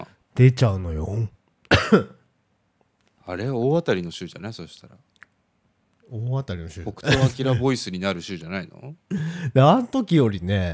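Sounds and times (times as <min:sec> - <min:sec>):
speech: 0:00.4 - 0:02.2, 0:03.3 - 0:05.1, 0:06.1 - 0:10.7
person with a cold coughing: 0:01.7 - 0:02.2, 0:07.1 - 0:07.4
laughter: 0:06.8 - 0:07.7
faint breath: 0:09.1 - 0:09.6.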